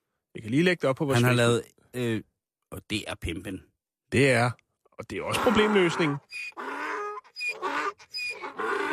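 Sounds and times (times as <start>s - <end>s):
speech: 0.4s - 6.6s
donkey braying with gasping breaths: 5.2s - 8.9s.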